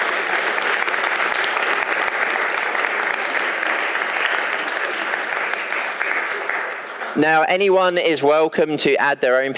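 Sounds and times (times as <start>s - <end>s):
audience applause from a sizeable group: 0.0s - 7.2s
speech: 7.2s - 9.5s.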